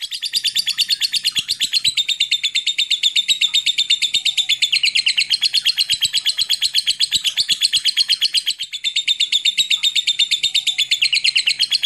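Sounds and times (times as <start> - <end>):
lovebird long ngekek trill: 0.0 - 11.8.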